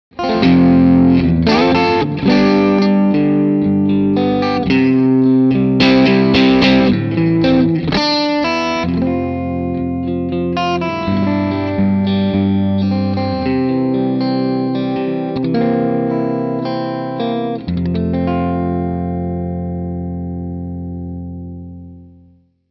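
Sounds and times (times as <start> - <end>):
single coil electric guitar with crystal overdrive, neck and middle pickup: 0.1 - 22.4.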